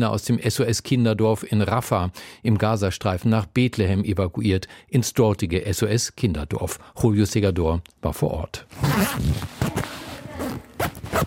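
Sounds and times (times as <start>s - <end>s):
speech: 0.0s - 10.5s
zipper of a small backpack pulled with a jerk: 8.7s - 11.2s.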